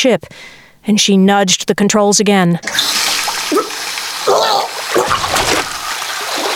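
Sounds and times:
speech: 0.0 - 3.6
cold water running from a tap: 2.6 - 6.5.

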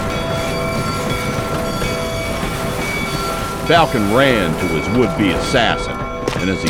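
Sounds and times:
faint metallic squeal of train brakes: 0.0 - 6.6
train pulling into a station rumbling: 0.0 - 6.6
speech: 3.7 - 6.6.

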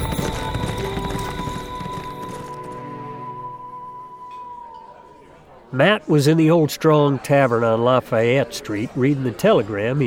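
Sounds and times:
horse hoofbeats galloping away: 0.0 - 2.9
speech: 5.7 - 10.0.

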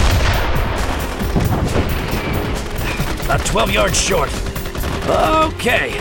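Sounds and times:
explosive battle noise: 0.0 - 4.2
dense gunfire during an attack: 0.0 - 5.3
speech: 3.3 - 5.9.

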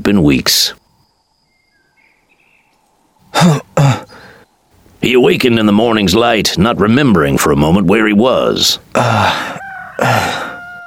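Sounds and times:
speech: 0.0 - 0.8, 3.4 - 3.6, 5.1 - 10.4
rooster crowing in the morning: 9.2 - 10.8.

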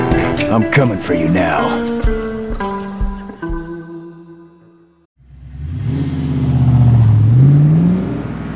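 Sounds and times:
sustained musical chords: 0.0 - 5.1
speech: 0.5 - 2.2
rented Ford engine starting and revving as the car drives off: 5.2 - 8.5.

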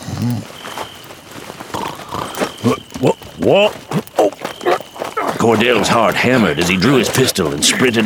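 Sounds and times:
horses moving through grass at an old fort: 0.0 - 8.0
speech: 0.2 - 0.6, 2.6 - 4.1, 5.4 - 8.0
horse snorting: 1.7 - 8.0.

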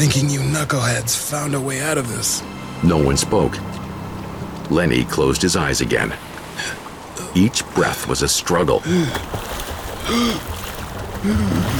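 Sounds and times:
speech: 0.0 - 3.8, 4.7 - 6.8, 7.4 - 10.5, 11.2 - 11.7
rowboat being paddled with steady watery wash: 5.9 - 11.7.

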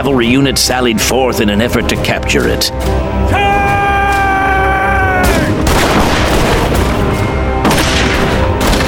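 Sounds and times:
speech: 0.0 - 3.5
constant loud din of battle: 2.4 - 8.8
drawn-out shouting voices: 3.3 - 5.6
Texan and Mexican cannons exchanging fire: 5.3 - 8.8.

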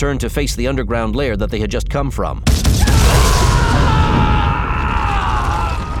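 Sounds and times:
speech: 0.0 - 4.3
loud explosion with sustained roaring rumble: 2.4 - 5.9.

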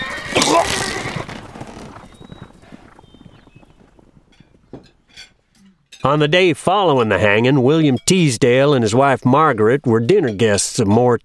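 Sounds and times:
horse in a team whinnying loudly: 0.0 - 3.4
hooves of a horse team clopping and shuffling: 0.0 - 11.2
speech: 0.4 - 0.8, 6.0 - 11.2.

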